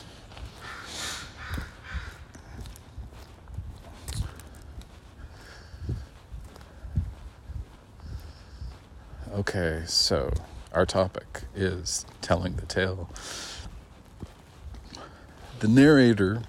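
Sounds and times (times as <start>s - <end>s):
faint street noise: 0.0s - 16.4s
footsteps on a street: 0.0s - 16.4s
crows cawing: 0.4s - 2.7s
speech: 9.4s - 13.5s, 15.6s - 16.4s.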